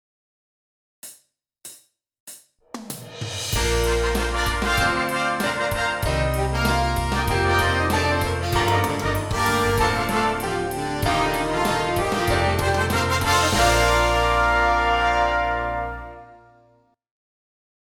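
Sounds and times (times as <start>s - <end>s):
instrument playing a concert B flat scale: 3.6s - 16.2s.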